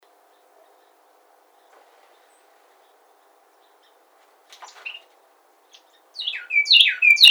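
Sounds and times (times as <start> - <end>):
Carolina wren song with descending slurred notes: 0.0 - 7.3
Carolina wren soft chips: 1.6 - 7.3.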